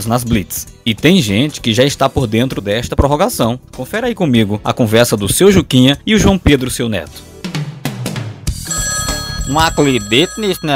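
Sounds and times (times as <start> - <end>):
speech: 0.0 - 7.3, 9.5 - 10.7
telephone ringing with sharp bell-like bursts: 8.6 - 10.7.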